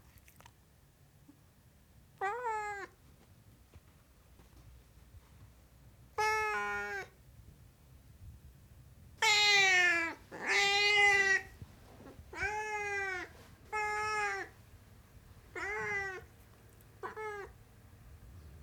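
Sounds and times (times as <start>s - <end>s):
Siamese cat meowing: 2.2s - 3.0s, 6.2s - 7.2s, 9.2s - 11.6s, 12.3s - 14.6s, 15.5s - 16.3s, 17.0s - 17.6s.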